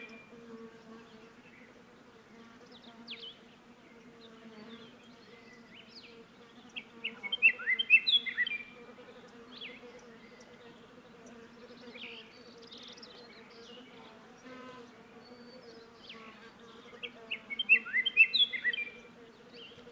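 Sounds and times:
Scott's Oriole whistled song: 7.0s - 8.7s, 17.5s - 19.0s.

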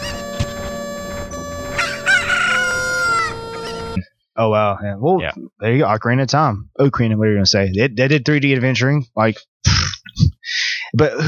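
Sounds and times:
rooster crowing: 1.6s - 4.0s
chickens clucking: 1.7s - 4.0s
speech: 4.4s - 10.3s, 10.9s - 11.2s.

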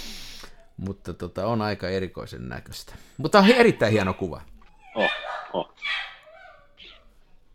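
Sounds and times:
speech: 0.8s - 6.1s
dog barking: 4.9s - 7.0s.

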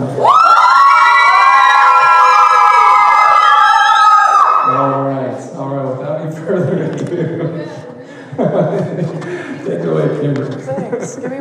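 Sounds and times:
loud audience cheering and whooping: 0.0s - 5.0s
laughter: 6.4s - 11.3s.

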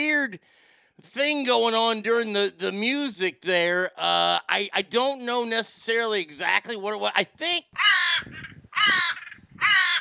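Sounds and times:
speech: 0.0s - 8.5s
crow cawing: 7.8s - 10.0s.

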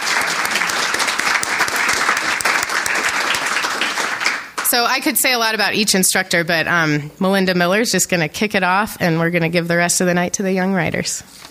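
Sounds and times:
room full of people applauding: 0.0s - 4.8s
speech: 4.7s - 11.4s.

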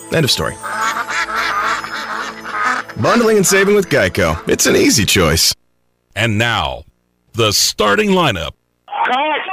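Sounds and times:
speech: 0.1s - 1.0s, 3.0s - 5.6s, 6.2s - 9.4s
duck quacking: 0.6s - 5.0s.

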